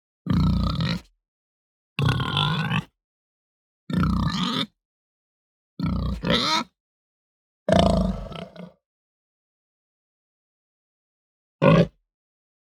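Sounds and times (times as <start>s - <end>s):
Hampshire domestic pig giving deep guttural grunts: 0.3s - 1.1s, 2.0s - 2.9s, 3.9s - 4.7s, 5.8s - 6.7s, 7.7s - 8.8s, 11.6s - 12.0s.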